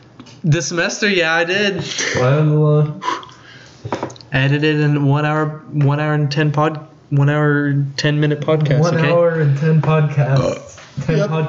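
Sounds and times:
speech: 0:00.2 - 0:11.4
long throaty burp: 0:10.4 - 0:10.7.

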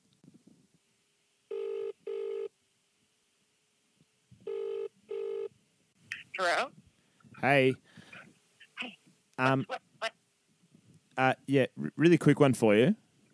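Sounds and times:
ringback tone of an outgoing phone call heard through a handset: 0:01.5 - 0:02.5, 0:04.5 - 0:05.5
speech: 0:06.4 - 0:06.8, 0:07.4 - 0:07.9, 0:09.4 - 0:09.8, 0:11.2 - 0:13.0.

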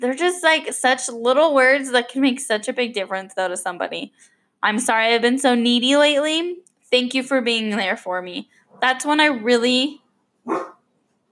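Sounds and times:
speech: 0:00.0 - 0:10.7
dog barking: 0:10.4 - 0:10.8.

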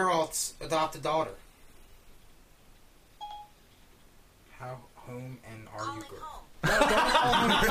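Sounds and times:
speech: 0:00.0 - 0:01.5, 0:04.6 - 0:07.7
faint hiss: 0:00.0 - 0:07.7
smartphone Siri voice assistant activation beep: 0:03.2 - 0:03.6
laughter: 0:06.6 - 0:07.7.

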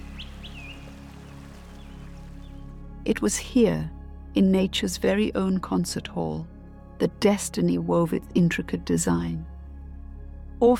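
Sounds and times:
birds chirping: 0:00.0 - 0:02.8
speech: 0:03.0 - 0:09.5, 0:10.6 - 0:10.7.

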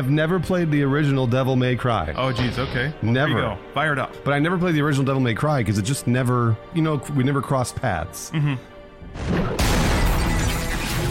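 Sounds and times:
speech: 0:00.0 - 0:09.6
loud dense video game explosions: 0:09.1 - 0:11.0.

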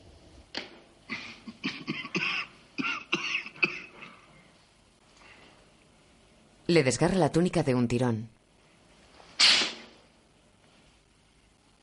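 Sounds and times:
fit of harsh coughing: 0:01.1 - 0:04.3
speech: 0:06.7 - 0:08.4.

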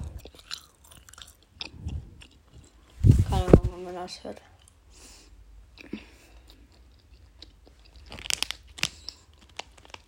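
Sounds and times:
chewing of hard gummy sweets: 0:00.0 - 0:03.0, 0:05.7 - 0:10.0
speech: 0:03.9 - 0:04.5.

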